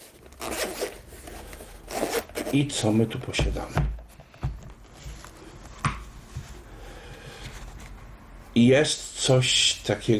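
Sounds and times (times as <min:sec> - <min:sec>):
zipper being pulled open on a protective carrying case: 0:00.0 - 0:02.6
speech: 0:02.5 - 0:03.9, 0:08.6 - 0:10.1.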